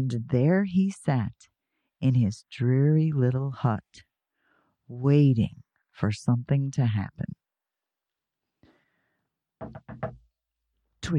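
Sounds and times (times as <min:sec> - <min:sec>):
speech: 0:00.0 - 0:04.1, 0:04.9 - 0:07.4, 0:09.6 - 0:10.2
firm knocks on a door: 0:09.6 - 0:10.3.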